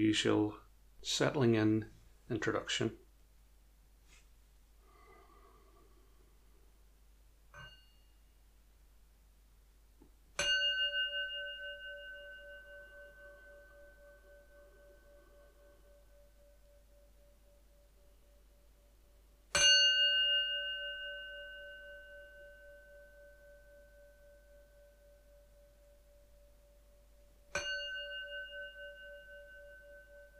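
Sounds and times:
speech: 0:00.0 - 0:03.0
meditation bell struck: 0:07.6 - 0:08.4, 0:10.4 - 0:18.7, 0:19.5 - 0:30.3.

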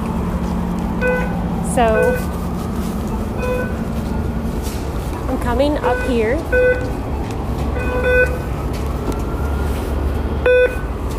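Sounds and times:
constant low rumble of station or traffic noise: 0:00.0 - 0:11.1
speech: 0:01.8 - 0:02.4, 0:05.4 - 0:07.0
transit fare card reader beeps as a fare card is tapped: 0:01.9 - 0:02.3, 0:03.4 - 0:03.8, 0:05.8 - 0:06.9, 0:07.8 - 0:08.4, 0:10.4 - 0:10.9.

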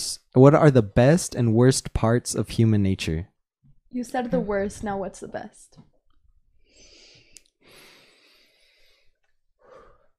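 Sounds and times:
speech: 0:00.4 - 0:03.3, 0:03.9 - 0:05.9
person breathing into a microphone: 0:06.6 - 0:10.1.

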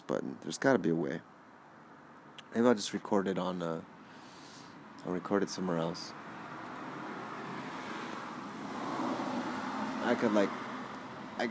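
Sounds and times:
speech: 0:00.1 - 0:01.4, 0:02.5 - 0:04.0, 0:05.0 - 0:06.2, 0:10.0 - 0:10.6
loud car passing by: 0:05.8 - 0:11.4.

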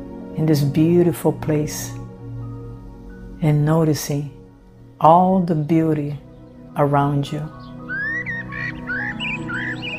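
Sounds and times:
speech: 0:00.4 - 0:02.0, 0:03.4 - 0:04.4, 0:05.0 - 0:06.2, 0:06.8 - 0:07.6
bird chirping in short bright whistled notes: 0:06.3 - 0:09.9.

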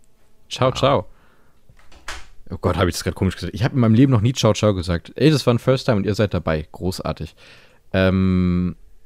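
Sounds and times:
speech: 0:00.5 - 0:01.1, 0:02.5 - 0:08.8
door swinging shut with a soft thud: 0:01.8 - 0:02.4.

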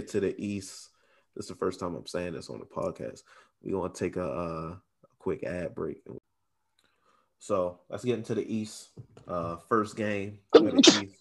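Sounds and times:
speech: 0:00.0 - 0:06.2, 0:07.4 - 0:11.1
man sneezing loudly: 0:10.6 - 0:11.1.

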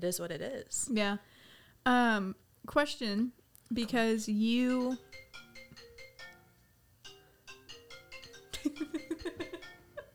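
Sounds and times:
speech: 0:00.0 - 0:05.2
mobile phone ringtone playing a bouncy electronic melody: 0:04.7 - 0:10.1.

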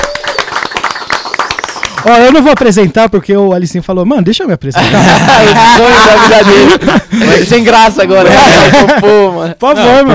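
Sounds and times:
several people clapping: 0:00.0 - 0:03.2
speech: 0:02.0 - 0:10.1
laughter: 0:04.8 - 0:09.4.

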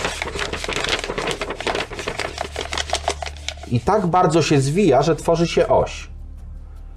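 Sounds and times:
sheet of paper being crumpled: 0:00.0 - 0:04.7
speech: 0:03.7 - 0:06.1.

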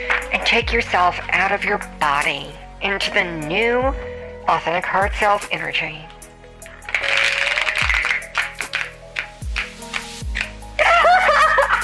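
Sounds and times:
speech: 0:00.0 - 0:06.1
deck of cards shuffled in slow motion: 0:06.9 - 0:10.6
laughter: 0:10.8 - 0:11.8.

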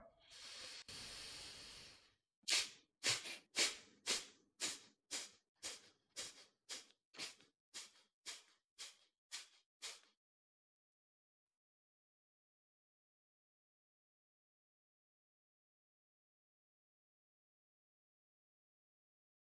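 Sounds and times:
long hissing breath during a breathing exercise: 0:00.2 - 0:10.1.

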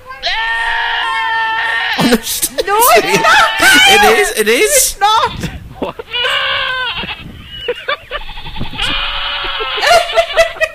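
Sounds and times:
goat bleating: 0:00.1 - 0:10.6
people laughing: 0:02.0 - 0:08.4, 0:09.3 - 0:10.7
speech: 0:02.1 - 0:06.0.

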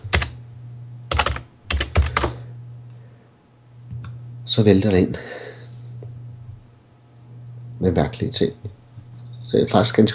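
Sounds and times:
computer keyboard typing into a search: 0:00.0 - 0:00.4, 0:01.1 - 0:02.3
low steady hum: 0:00.0 - 0:10.1
speech: 0:04.5 - 0:05.5, 0:07.8 - 0:08.8, 0:09.5 - 0:10.1.

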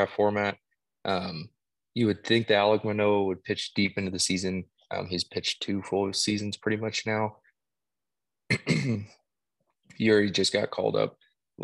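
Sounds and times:
speech: 0:00.0 - 0:07.4, 0:08.5 - 0:09.2, 0:09.9 - 0:11.6
raspy throat clearing: 0:08.5 - 0:09.2.

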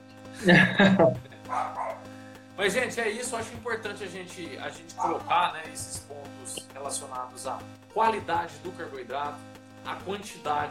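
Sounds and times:
laughter: 0:00.4 - 0:01.2
speech: 0:00.4 - 0:01.7, 0:02.6 - 0:10.6
dog yipping softly: 0:01.5 - 0:02.0
dog barking: 0:01.5 - 0:02.1, 0:05.0 - 0:05.2.

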